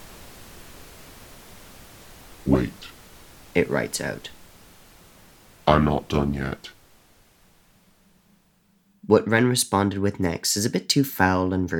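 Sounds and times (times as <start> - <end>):
low static hiss from a void-filled screen: 0.0 - 11.7
speech: 2.4 - 3.0, 3.6 - 4.4, 5.7 - 6.8, 9.1 - 11.7.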